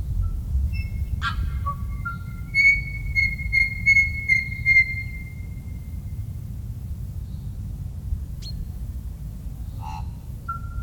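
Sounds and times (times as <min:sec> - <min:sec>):
steady low rumble: 0:00.0 - 0:10.8
tui song with ringing notes and whistled tone: 0:00.2 - 0:05.8.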